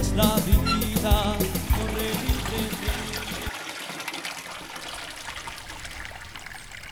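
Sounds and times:
music: 0.0s - 3.5s
speech: 0.2s - 1.4s
flowing river water rushing: 0.4s - 6.9s.

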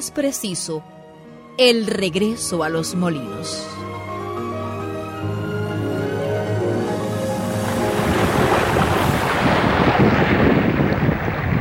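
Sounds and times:
speech: 0.0s - 1.0s, 1.6s - 4.0s
gusting wind: 5.0s - 11.6s
sea waves crashing on reefs and rocks: 6.5s - 11.6s.

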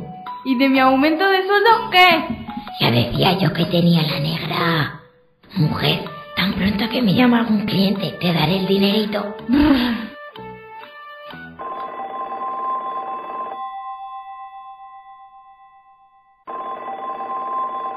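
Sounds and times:
speech: 0.4s - 10.1s
old-style telephone bell ringing: 11.6s - 17.9s.

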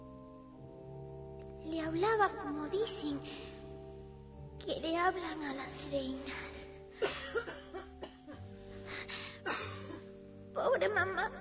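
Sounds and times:
speech: 1.6s - 3.6s, 4.6s - 7.5s, 10.6s - 11.4s
woman's harsh heavy chesty cough: 7.0s - 8.4s, 9.4s - 10.0s.

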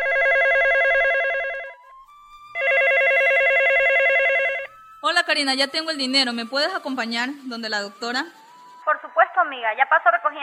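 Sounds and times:
telephone ringing in warbling bursts: 0.0s - 1.8s, 2.5s - 8.8s
speech: 5.3s - 8.4s, 9.4s - 10.4s.

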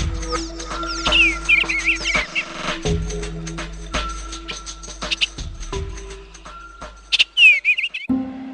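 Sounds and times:
rare bird, only species in its genus, calling in chirps and whistles: 0.2s - 2.9s, 7.1s - 8.1s.

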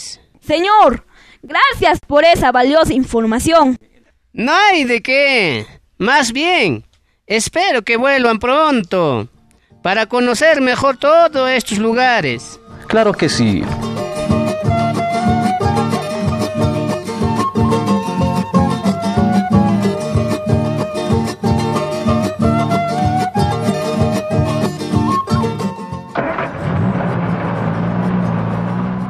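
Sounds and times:
speech: 0.5s - 14.0s
rhythmic music: 12.5s - 26.2s
car engine rumbling with road noise as the car pulls away: 26.1s - 29.0s.

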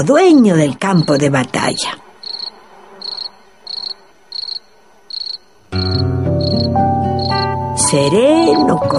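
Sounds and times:
speech: 0.0s - 2.0s, 7.9s - 8.9s
cricket chirping: 2.2s - 8.9s
gentle melodic music: 5.7s - 8.9s.

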